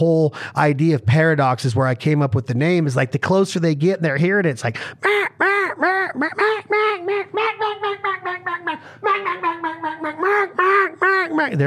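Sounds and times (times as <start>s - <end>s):
speech: 0.0s - 11.6s
duck call blown to imitate ducks quacking: 5.0s - 11.5s.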